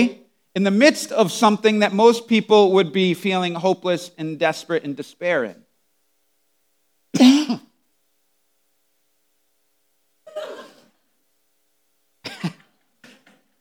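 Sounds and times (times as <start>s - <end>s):
speech: 0.0s - 5.6s, 7.1s - 7.7s
loud cough and short hacking bursts: 7.1s - 7.8s, 12.2s - 13.3s
quiet throat clearing: 7.1s - 7.8s, 12.2s - 13.4s.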